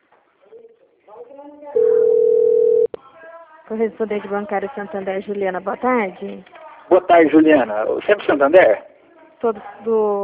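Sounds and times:
speech: 1.2 - 2.1, 3.7 - 10.2
telephone call tone during an outgoing call: 1.8 - 2.9.

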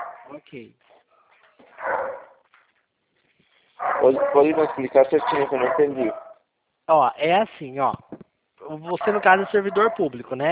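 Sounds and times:
dogs barking heard thinly over a phone line: 0.0 - 0.3, 1.7 - 2.4, 3.8 - 6.4, 9.0 - 10.1
speech: 0.3 - 0.9, 4.0 - 6.2, 6.9 - 10.4.

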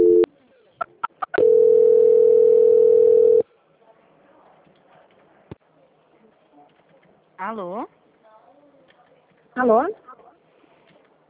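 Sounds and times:
telephone tone as a call is transferred to another line: 0.0 - 0.3, 1.4 - 3.4
speech: 7.5 - 8.0, 9.6 - 10.0.

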